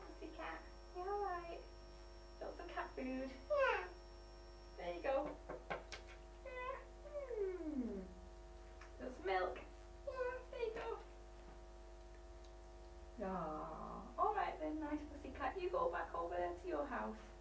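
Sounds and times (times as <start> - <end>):
steady low electrical hum: 0.0 - 17.3
child imitating cat meows: 3.5 - 3.9, 6.5 - 8.0.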